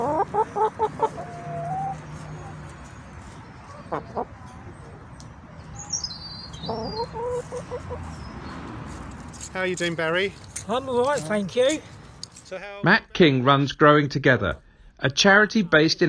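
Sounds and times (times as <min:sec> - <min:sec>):
chickens clucking: 0:00.0 - 0:09.4
speech: 0:00.4 - 0:01.4, 0:03.9 - 0:04.4, 0:07.1 - 0:11.9, 0:12.5 - 0:16.0.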